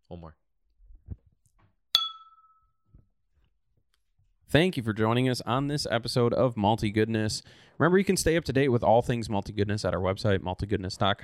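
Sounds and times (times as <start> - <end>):
speech: 0.1 - 0.4, 4.5 - 11.2
beer glasses clinking in a toast: 2.0 - 2.6.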